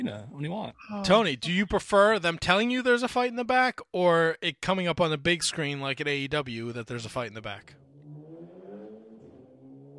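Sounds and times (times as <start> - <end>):
speech: 0.0 - 7.8
motorcycle engine roaring past at high speed: 7.6 - 9.9.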